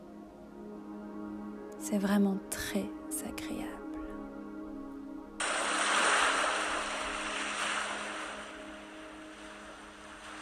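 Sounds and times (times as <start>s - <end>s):
speech: 1.8s - 3.8s
distant ocean waves: 5.4s - 10.4s
low hum: 5.4s - 10.4s.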